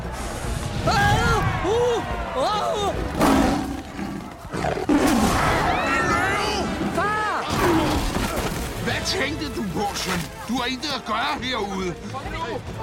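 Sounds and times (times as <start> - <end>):
busy crowd-like din: 0.0 - 12.8
lions roaring in the African wild: 3.1 - 8.0
speech: 9.0 - 12.8.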